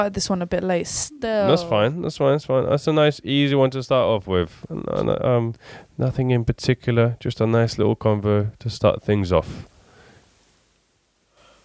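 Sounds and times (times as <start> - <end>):
speech: 0.0 - 9.7
person yawning: 1.4 - 1.9.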